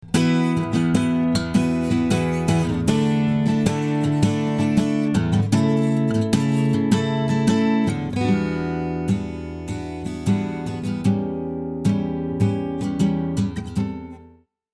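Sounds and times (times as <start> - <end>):
acoustic guitar: 0.0 - 14.5.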